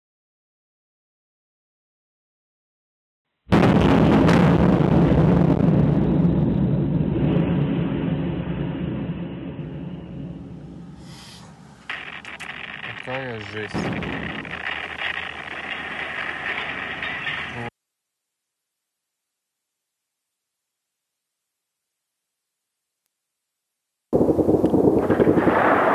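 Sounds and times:
explosions at night: 0:03.5 - 0:17.7, 0:24.2 - 0:25.9
machine-gun fire at night: 0:11.9 - 0:17.7, 0:24.2 - 0:25.9
speech: 0:13.4 - 0:14.3.

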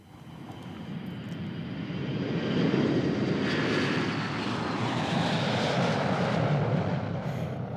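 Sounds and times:
loud airplane engine roar with a faint rising whine: 0:00.0 - 0:07.7.

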